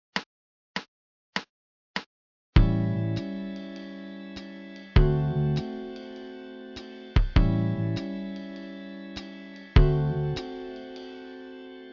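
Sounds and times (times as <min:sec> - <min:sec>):
basic walking bass line phrases: 0:02.6 - 0:03.3, 0:05.0 - 0:05.7, 0:07.2 - 0:08.0, 0:09.8 - 0:10.5.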